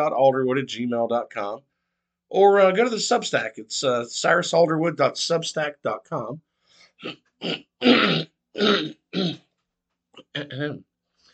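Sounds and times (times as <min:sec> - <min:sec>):
speech: 0:00.0 - 0:01.7, 0:02.3 - 0:09.4, 0:10.2 - 0:10.9
harsh throat clearing: 0:07.0 - 0:09.5, 0:10.2 - 0:10.9.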